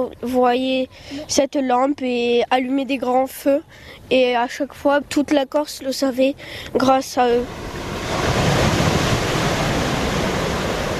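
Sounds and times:
speech: 0:00.0 - 0:07.8
surf washing onto Saint-François beach: 0:07.3 - 0:10.9.

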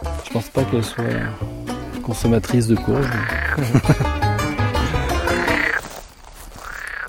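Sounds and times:
speech: 0:00.3 - 0:01.5, 0:02.1 - 0:04.3
frogs croaking: 0:00.7 - 0:01.7, 0:03.0 - 0:03.7, 0:04.9 - 0:07.0
laughter: 0:03.3 - 0:05.7.

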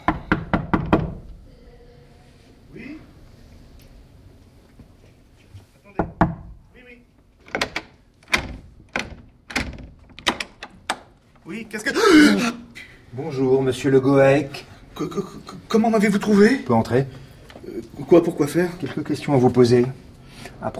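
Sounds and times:
rapid knocking on a door: 0:00.0 - 0:01.2, 0:06.0 - 0:06.6
speech: 0:11.6 - 0:12.6, 0:13.2 - 0:17.2, 0:17.9 - 0:20.0, 0:20.6 - 0:20.7.

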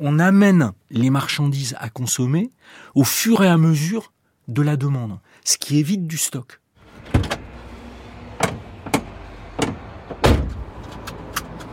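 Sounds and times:
speech: 0:00.0 - 0:07.3
Renault T truck engine low steady rumble: 0:06.8 - 0:11.7
Renault T truck cab door and fittings clunking and thudding: 0:06.9 - 0:07.6, 0:08.3 - 0:11.1.

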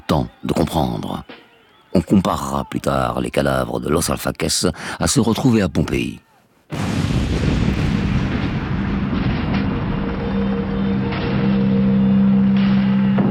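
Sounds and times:
speech: 0:00.1 - 0:07.0
chain of rapid explosions with sharp cracks: 0:06.7 - 0:13.2.

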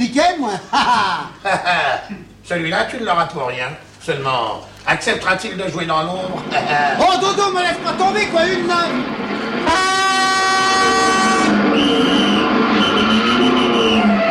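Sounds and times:
speech: 0:00.2 - 0:09.9
laughter: 0:00.5 - 0:02.3
loud car horn blasts: 0:09.6 - 0:14.2.

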